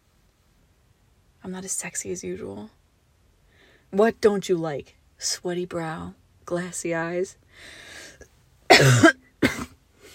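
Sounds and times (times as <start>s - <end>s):
speech: 1.4s - 2.8s, 3.9s - 7.8s, 8.8s - 9.2s
soft breathing: 3.4s - 3.9s, 7.5s - 8.3s
person coughing: 8.7s - 9.8s.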